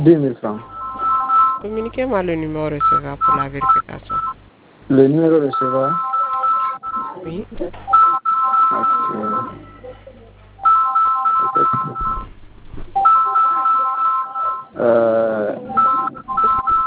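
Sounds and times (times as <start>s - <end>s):
speech: 0.0s - 0.8s, 1.6s - 6.1s, 7.2s - 8.0s, 8.7s - 9.7s, 11.5s - 12.9s, 14.8s - 15.8s
telephone electronic ringtone: 0.6s - 4.4s, 5.4s - 9.8s, 10.6s - 12.3s, 13.0s - 14.8s, 15.6s - 16.8s.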